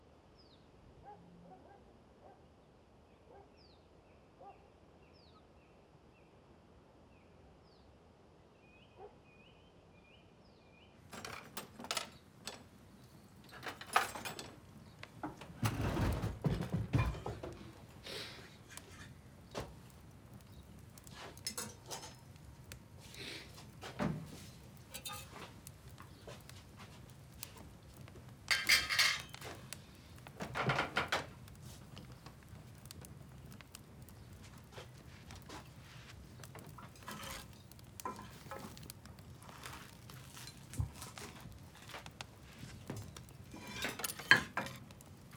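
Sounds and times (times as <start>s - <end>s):
bread toasting in a kitchen: 11.1s - 45.3s.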